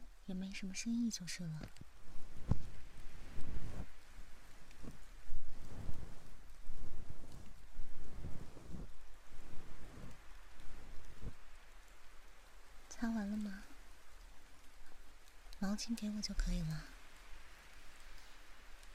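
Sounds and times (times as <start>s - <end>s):
steady rain hissing: 0.0s - 18.9s
speech: 0.3s - 1.9s, 15.8s - 17.0s
heavier raindrops landing with soft thuds: 1.5s - 11.7s.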